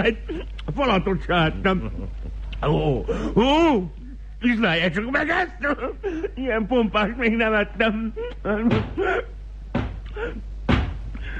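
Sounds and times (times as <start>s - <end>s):
speech: 0.0s - 9.4s, 10.2s - 10.5s
knocking on a door: 8.6s - 9.0s, 9.7s - 10.0s, 10.7s - 11.0s.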